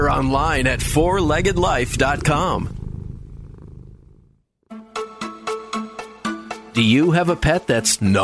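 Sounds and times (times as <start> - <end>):
cat purring: 0.0 - 4.7
speech: 0.1 - 2.8, 6.8 - 8.2.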